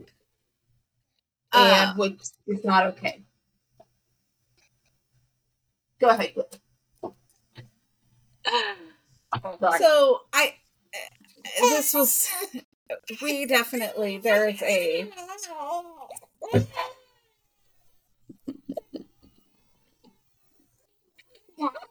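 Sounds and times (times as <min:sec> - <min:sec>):
speech: 0:01.6 - 0:03.3, 0:06.0 - 0:07.2, 0:08.5 - 0:17.0
young children fussing and crying: 0:11.0 - 0:12.6, 0:14.4 - 0:17.1.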